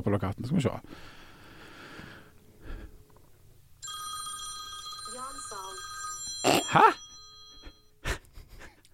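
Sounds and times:
speech: 0:00.0 - 0:01.2, 0:06.7 - 0:07.0
telephone ringing with a bright electronic tone: 0:03.8 - 0:08.0
person murmuring: 0:06.4 - 0:07.0.

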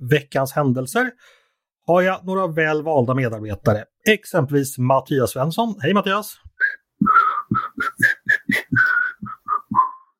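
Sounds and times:
speech: 0:00.0 - 0:07.2
breathy failed whistling: 0:06.6 - 0:10.1.

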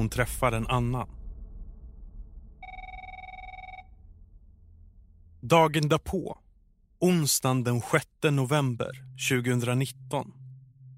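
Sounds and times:
speech: 0:00.0 - 0:01.2, 0:05.4 - 0:06.4, 0:07.0 - 0:10.4
steady low rumble: 0:00.0 - 0:10.9
telephone ringing with a bright electronic trill: 0:02.6 - 0:03.9.

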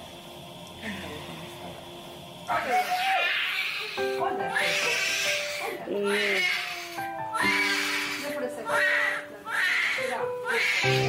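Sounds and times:
newborn baby girl crying just after birth: 0:02.5 - 0:11.0.

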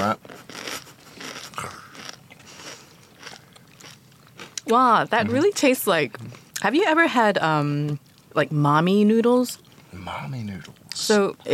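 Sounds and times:
person biting into crispy spicy fried chicken: 0:00.0 - 0:04.7
speech: 0:04.7 - 0:11.5.

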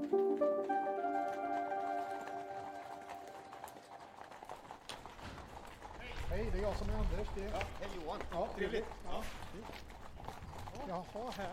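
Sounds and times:
horse hooves clip-clopping on a hard surface: 0:00.0 - 0:11.5
speech: 0:06.6 - 0:09.9, 0:10.8 - 0:11.5.

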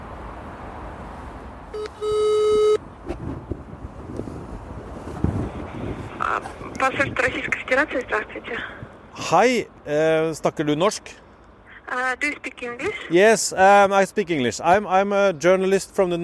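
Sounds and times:
rustling wind-like background: 0:00.0 - 0:16.2
telephone ringback tone: 0:01.7 - 0:02.8
speech: 0:06.8 - 0:11.2, 0:11.9 - 0:16.2.

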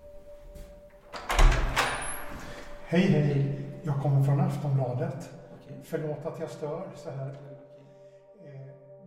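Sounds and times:
apartment door opening in a stairwell: 0:00.9 - 0:02.9
door latch rattling: 0:01.1 - 0:02.4
speech: 0:02.9 - 0:07.6.

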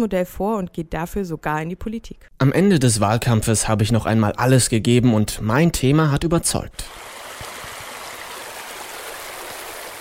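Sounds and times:
speech: 0:00.0 - 0:07.2
flowing river water: 0:06.9 - 0:10.0.

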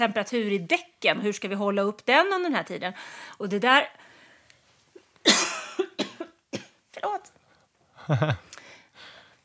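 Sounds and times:
speech: 0:00.0 - 0:04.0, 0:08.1 - 0:08.5
person coughing harshly: 0:05.3 - 0:06.8.

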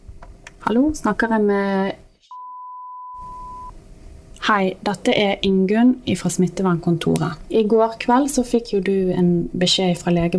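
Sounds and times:
speech: 0:00.7 - 0:02.0, 0:04.5 - 0:10.3
telephone ringing tone while placing a call: 0:02.3 - 0:03.7.

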